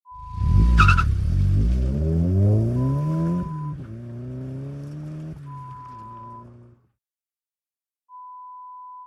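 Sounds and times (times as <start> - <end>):
car pulling away: 0.2 - 6.8.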